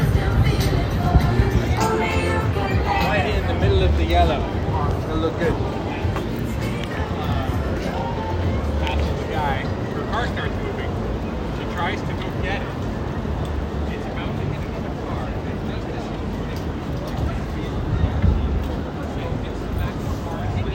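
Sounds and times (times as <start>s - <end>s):
street background noise: 0.0s - 20.7s.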